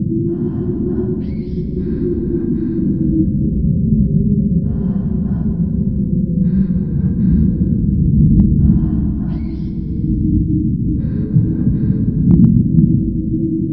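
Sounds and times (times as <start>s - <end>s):
alien cavern ambience: 0.0s - 13.7s.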